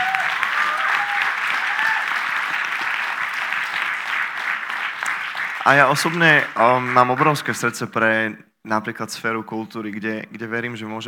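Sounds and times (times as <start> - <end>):
audience applause at a church gathering: 0.0 - 7.7
speech: 5.6 - 11.0.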